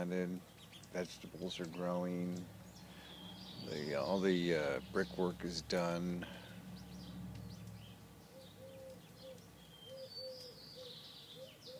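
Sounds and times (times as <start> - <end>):
speech: 0.0 - 2.6, 3.6 - 6.4
birds chirping and tweeting in a community garden: 0.0 - 11.7
steady low cooing: 8.3 - 11.7.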